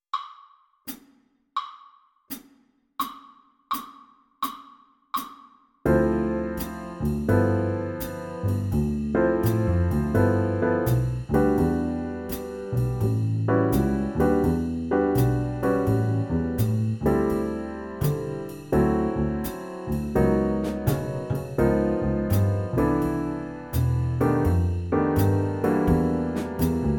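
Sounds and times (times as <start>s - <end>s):
jazz band playing: 5.9s - 26.9s.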